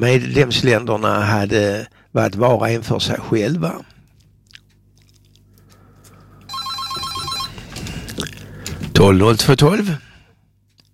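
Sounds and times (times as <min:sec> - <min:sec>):
speech: 0:00.0 - 0:03.9, 0:09.0 - 0:10.1
telephone ringing with electronic trill: 0:06.5 - 0:07.8.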